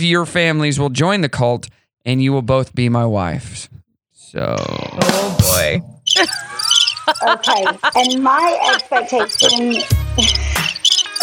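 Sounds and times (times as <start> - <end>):
speech: 0.0 - 3.7, 4.3 - 6.5, 7.1 - 10.4
crickets chirping: 6.1 - 11.2.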